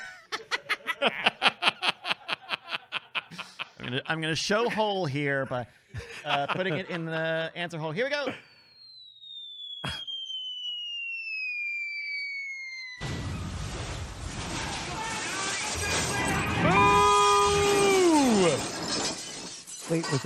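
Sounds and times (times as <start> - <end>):
laughter: 0.0 - 5.0, 5.9 - 7.5
speech: 1.0 - 1.3, 3.9 - 8.5, 20.0 - 20.2
falling whistle-like tone: 8.3 - 14.0, 15.2 - 18.5
screeching tones sliding downward: 8.4 - 18.8
car crash sound effect signalling a bad answer in a game: 13.0 - 19.6.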